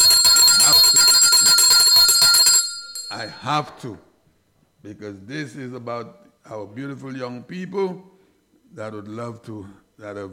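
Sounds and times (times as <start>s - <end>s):
handbell rung vigorously: 0.0s - 3.4s
speech: 3.2s - 4.1s, 4.8s - 8.1s, 8.7s - 10.3s.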